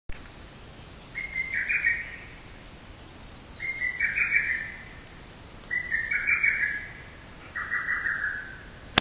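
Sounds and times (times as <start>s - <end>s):
hototogisu calling: 1.1s - 2.4s, 3.6s - 5.1s, 5.7s - 8.9s.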